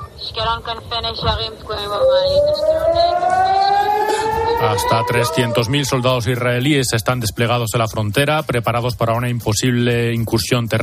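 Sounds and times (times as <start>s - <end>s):
busy background: 0.0s - 10.8s
speech: 0.3s - 10.8s
air raid siren wailing: 1.5s - 6.4s.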